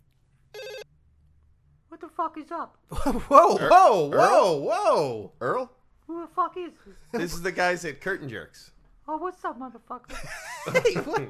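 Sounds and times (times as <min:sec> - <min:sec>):
low hum: 0:00.0 - 0:11.2
phone outgoing call ring tone: 0:00.5 - 0:00.9
speech: 0:02.0 - 0:11.2
laughter: 0:02.9 - 0:04.2, 0:10.1 - 0:11.2.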